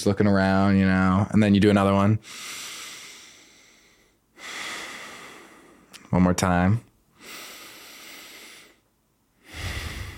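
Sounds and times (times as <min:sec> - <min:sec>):
speech: 0:00.0 - 0:02.6, 0:06.1 - 0:06.9
airy breath exhaled through the nose: 0:09.5 - 0:10.1.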